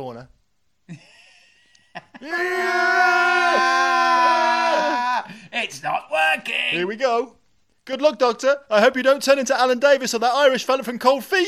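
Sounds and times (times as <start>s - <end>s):
speech: 0.0s - 1.1s, 2.0s - 3.0s, 5.6s - 11.4s
person screaming: 2.2s - 6.8s.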